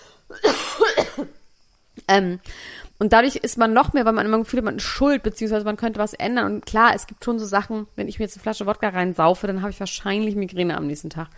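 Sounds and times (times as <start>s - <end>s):
person coughing: 0.3s - 1.4s
speech: 2.1s - 11.3s.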